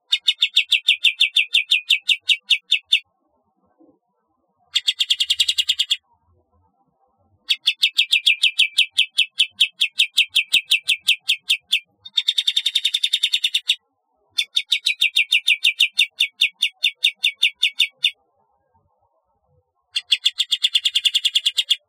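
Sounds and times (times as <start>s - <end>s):
bulbul giving rapid high chattering trills: 0.1s - 3.0s, 4.8s - 6.0s, 7.5s - 13.8s, 14.4s - 18.2s, 20.0s - 21.8s.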